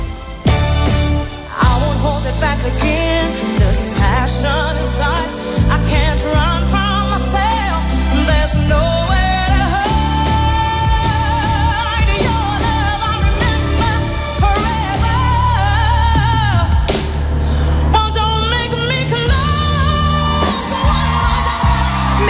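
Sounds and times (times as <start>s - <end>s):
live concert music: 0.0s - 22.2s
sustained belting vocals: 1.5s - 22.2s
live audience cheering and whooping at a tribute concert: 20.0s - 22.2s.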